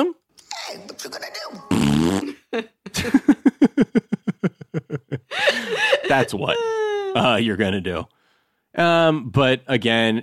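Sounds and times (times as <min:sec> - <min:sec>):
fart sound blown with the mouth: 0:01.7 - 0:02.4
laughter: 0:02.4 - 0:07.2
speech: 0:06.1 - 0:08.2, 0:08.8 - 0:10.2.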